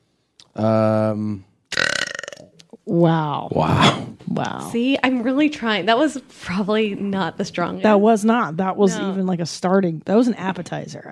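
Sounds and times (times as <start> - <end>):
speech: 0.6 - 1.5, 2.9 - 11.1
person burping deliberately: 0.6 - 2.7.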